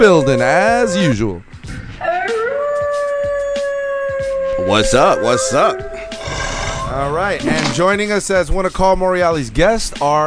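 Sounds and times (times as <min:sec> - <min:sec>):
person imitating a wolf howl: 0:00.0 - 0:01.2, 0:02.0 - 0:07.1
speech: 0:00.0 - 0:02.2, 0:04.6 - 0:10.2.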